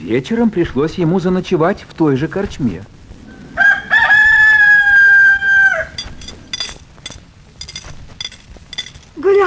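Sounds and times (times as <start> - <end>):
speech: 0.0 - 3.0
rustling: 0.1 - 9.4
chicken clucking: 3.2 - 6.5
rooster crowing: 3.3 - 6.5.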